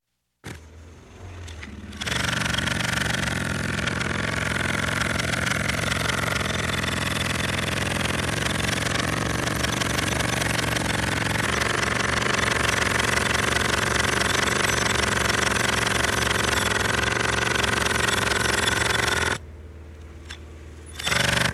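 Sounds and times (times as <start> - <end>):
pneumatic jackhammer: 1.5 - 19.4, 21.0 - 21.5.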